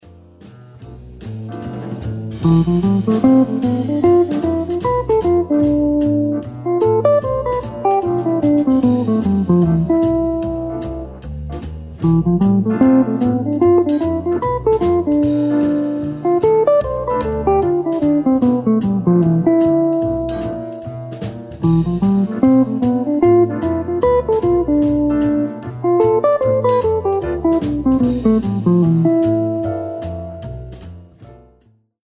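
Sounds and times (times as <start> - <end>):
locrian mode guitar lick: 2.4 - 11.2, 12.0 - 30.7.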